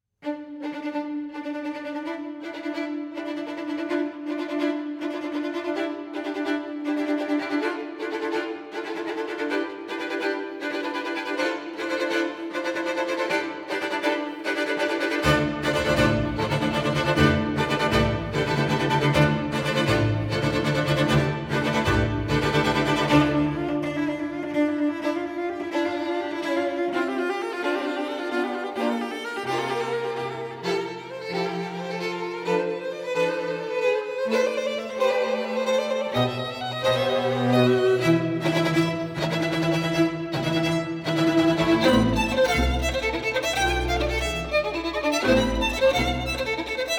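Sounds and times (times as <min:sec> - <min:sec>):
violin concerto excerpt: 0:00.2 - 0:46.9.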